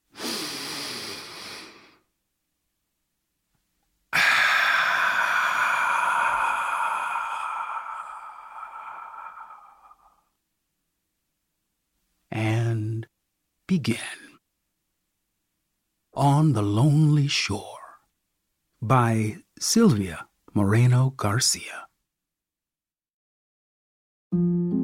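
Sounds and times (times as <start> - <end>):
deep breath: 0.0 - 2.1, 4.1 - 10.4
long exhaling sigh: 0.1 - 2.1, 4.1 - 10.4
speech: 13.7 - 14.2, 16.4 - 17.7, 18.8 - 21.9, 24.3 - 24.7.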